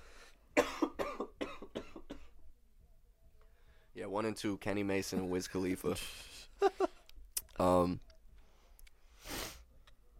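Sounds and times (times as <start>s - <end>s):
harsh coughing fit: 0.6s - 2.4s
speech: 4.0s - 6.8s, 7.6s - 8.1s.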